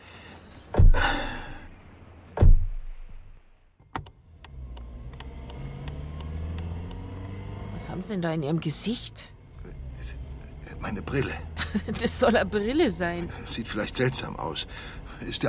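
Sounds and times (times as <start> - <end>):
car engine starting and rumbling at night: 0.0 - 15.4
heavy car door thumps: 0.6 - 1.3, 2.4 - 3.2
speech: 7.8 - 9.4, 10.9 - 15.4
laughter: 11.6 - 12.2.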